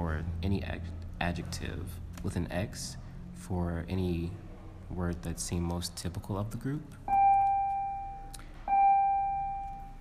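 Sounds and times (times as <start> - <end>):
speech: 0.2 - 7.0
bell ringing with a clear metallic tone: 7.1 - 10.0.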